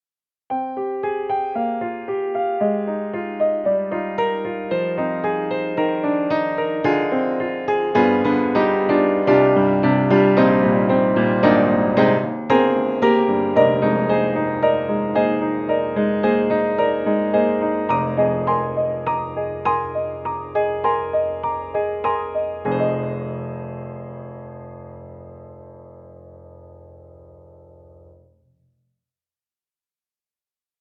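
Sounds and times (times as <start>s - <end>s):
upright piano swing music: 0.5s - 28.0s.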